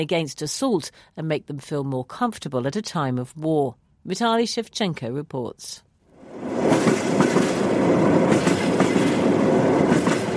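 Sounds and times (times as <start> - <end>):
speech: 0.0 - 8.1
long-distance sleeper train wheels clattering over rail joints: 6.6 - 10.3.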